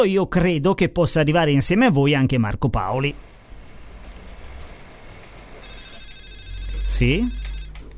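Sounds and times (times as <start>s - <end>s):
speech: 0.0s - 3.3s, 6.9s - 7.4s
person answering telephone: 5.6s - 7.9s
telephone ringing with electronic tones: 5.6s - 7.9s.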